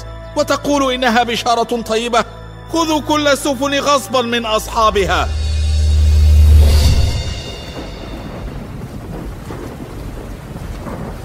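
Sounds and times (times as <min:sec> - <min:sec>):
speech: 0:00.4 - 0:05.4
roaring rumble of stormy sea: 0:04.7 - 0:11.2
heavy sea wave surging and crashing: 0:04.8 - 0:11.2.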